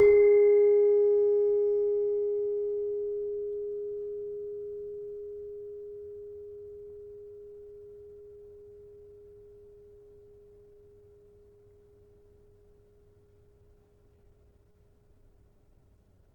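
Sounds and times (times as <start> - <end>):
demung metallophone note in G sharp: 0.0 - 8.6.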